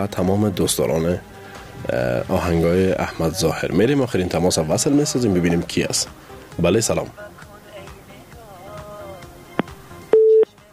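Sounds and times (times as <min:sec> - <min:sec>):
speech: 0:00.0 - 0:07.4
telephone busy tone after call disconnected: 0:10.1 - 0:10.5.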